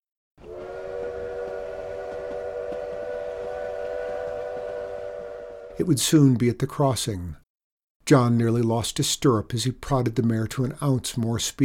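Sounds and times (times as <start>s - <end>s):
train whistle long chord-like blast: 0.4s - 5.9s
speech: 5.8s - 7.4s, 8.1s - 11.6s.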